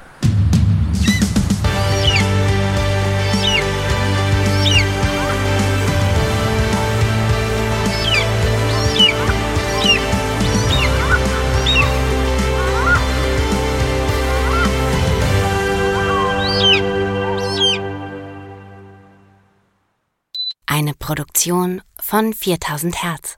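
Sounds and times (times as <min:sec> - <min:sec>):
low musical drone: 0:00.0 - 0:19.6
eagle calling: 0:01.0 - 0:18.1
speech: 0:21.1 - 0:23.3.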